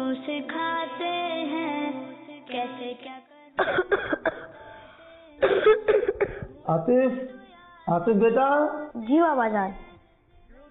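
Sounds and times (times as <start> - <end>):
speech: 0.1 - 1.6, 2.5 - 4.4, 6.7 - 9.8
child coughing: 3.6 - 4.6, 5.4 - 6.6.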